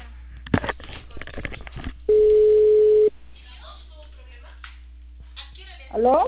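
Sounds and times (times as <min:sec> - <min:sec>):
telephone ringing tone on an outgoing call: 0:02.1 - 0:03.1
people talking: 0:03.4 - 0:06.2.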